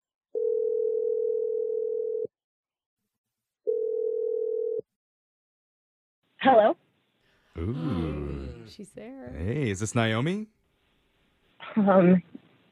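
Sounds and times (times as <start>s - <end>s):
long steady telephone ringing tone: 0.4s - 2.3s, 3.7s - 4.8s
speech: 7.6s - 10.6s, 11.8s - 12.4s.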